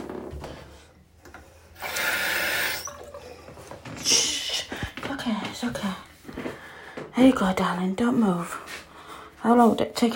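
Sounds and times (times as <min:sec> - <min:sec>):
water pouring from a tap into a glass: 0:01.8 - 0:03.5
speech: 0:05.2 - 0:06.1, 0:07.2 - 0:08.6, 0:09.4 - 0:10.1.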